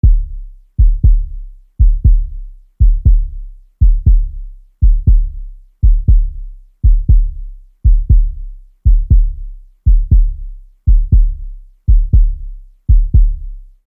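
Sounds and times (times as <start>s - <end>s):
heartbeat: 0.0s - 13.8s.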